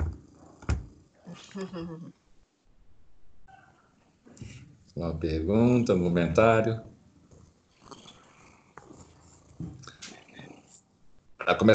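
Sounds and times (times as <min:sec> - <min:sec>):
cat purring softly: 0:00.0 - 0:01.6, 0:04.5 - 0:11.2
speech: 0:01.4 - 0:02.2, 0:04.4 - 0:06.9, 0:11.5 - 0:11.7.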